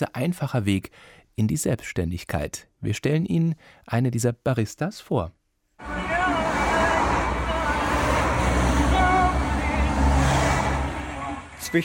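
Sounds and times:
speech: 0.0s - 6.1s
cars rushing past a small white van on a busy road in Salé: 5.8s - 11.8s.

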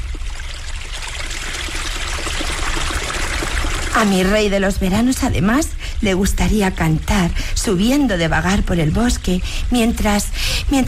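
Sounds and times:
spring water trickling and bubbling over sand: 0.0s - 6.5s
speech: 4.0s - 10.8s.

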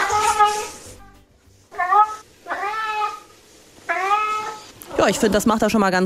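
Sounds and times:
cat meowing: 0.0s - 0.8s, 1.7s - 3.3s, 3.9s - 4.6s
speech: 5.0s - 6.0s.

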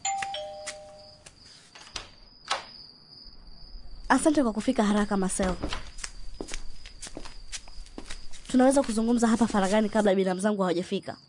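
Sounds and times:
electronic doorbell chime at a home's front door: 0.0s - 1.2s
speech: 4.1s - 5.9s, 8.5s - 11.2s.

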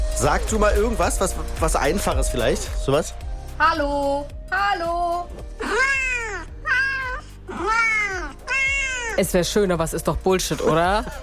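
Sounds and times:
speech: 0.2s - 6.0s, 9.2s - 11.2s
cat meows played by a phone translation app: 5.8s - 9.2s.

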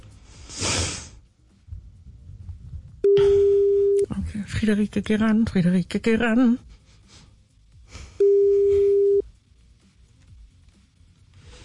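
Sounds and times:
telephone ringback tone while a call is being placed: 3.1s - 4.0s, 8.2s - 9.2s
speech: 4.4s - 6.8s.

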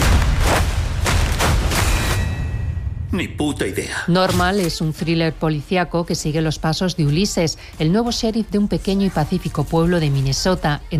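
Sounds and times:
dull heavy gunshots in a police thriller scene: 0.0s - 2.2s
speech: 3.1s - 10.9s.

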